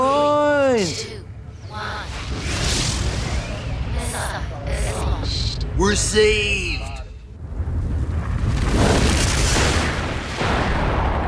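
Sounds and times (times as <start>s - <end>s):
speech: 0.8s - 1.1s, 5.9s - 6.7s
meteor exploding: 1.5s - 5.2s, 7.3s - 11.2s.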